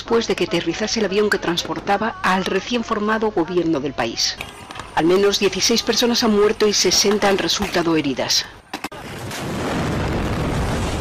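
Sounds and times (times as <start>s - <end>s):
speech: 0.1s - 8.6s
bomb explosion at an airport: 9.0s - 10.9s.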